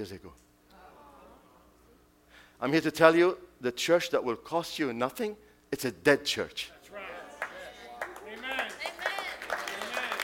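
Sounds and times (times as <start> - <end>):
speech: 0.0 - 0.5, 2.6 - 6.8
sparse scattered audience clapping: 7.0 - 10.2.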